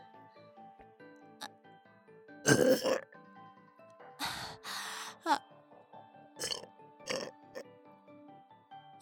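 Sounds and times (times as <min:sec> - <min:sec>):
loud rasping burps: 0:02.4 - 0:03.2, 0:06.4 - 0:07.6.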